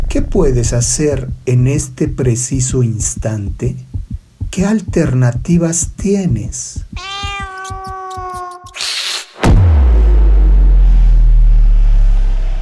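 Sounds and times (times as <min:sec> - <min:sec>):
deep steady rumble: 0:00.0 - 0:07.0, 0:09.9 - 0:12.6
speech: 0:00.1 - 0:03.9, 0:04.5 - 0:07.3
cat yowling: 0:07.0 - 0:08.8
loud thud: 0:09.4 - 0:10.7.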